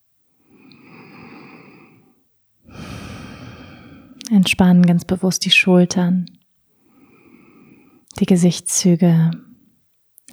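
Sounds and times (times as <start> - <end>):
slow deep breathing into the lower belly during a relaxation exercise: 0.3 - 4.3, 6.7 - 8.1
speech: 4.3 - 6.4, 8.2 - 9.5.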